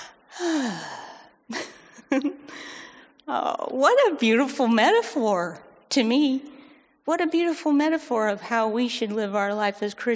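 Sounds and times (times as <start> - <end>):
voice imitating trees opening their stomata, drawn-in gasp: 0.0 - 1.4
speech: 1.5 - 2.6, 3.3 - 6.5, 7.1 - 10.1.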